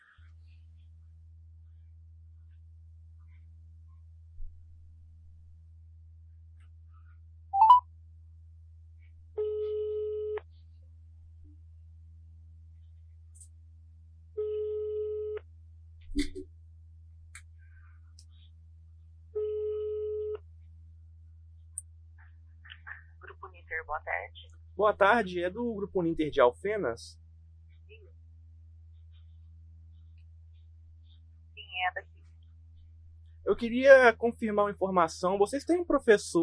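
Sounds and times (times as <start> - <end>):
constant low electrical hum: 0.0 - 36.4
telephone ringback tones from an outgoing call: 7.6 - 7.8
speech: 24.0 - 27.2, 33.6 - 36.4.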